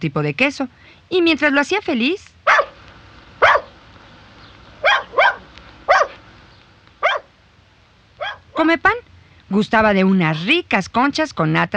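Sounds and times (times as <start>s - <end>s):
speech: 0.0s - 2.4s, 8.6s - 11.7s
very small dogs barking in sharp yips: 2.5s - 2.8s, 3.4s - 3.8s, 4.8s - 6.2s, 7.0s - 7.3s, 8.2s - 8.5s.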